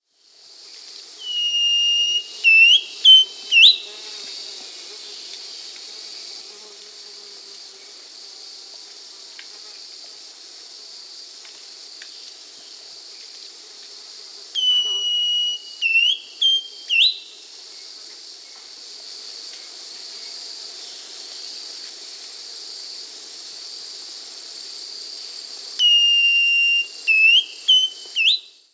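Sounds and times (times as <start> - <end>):
Thrush-like Schiffornis Schiffornis turdinus calling in Peru: 1.2 - 3.9, 14.6 - 17.2, 25.8 - 28.4.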